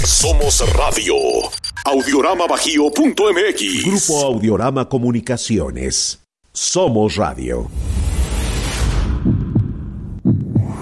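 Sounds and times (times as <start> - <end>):
speech: 0.0 - 8.0
heartbeat: 9.2 - 10.8.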